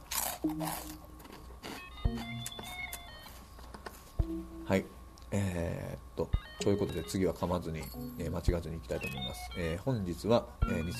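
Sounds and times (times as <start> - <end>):
crunching a bite of snack: 0.0 - 3.4
speech: 0.4 - 1.1, 2.1 - 2.9, 4.2 - 10.9.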